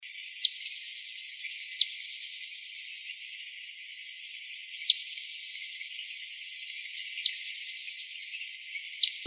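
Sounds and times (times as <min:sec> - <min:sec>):
faint steady hiss: 0:00.0 - 0:09.2
Eastern phoebe giving sharp high chip calls in Arizona: 0:07.2 - 0:07.5, 0:09.0 - 0:09.2.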